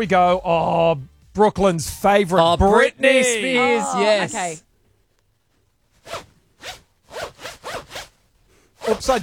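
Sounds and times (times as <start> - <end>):
speech: 0.0 - 4.7, 8.9 - 9.2
clothing zipper being zipped back and forth: 6.0 - 8.2.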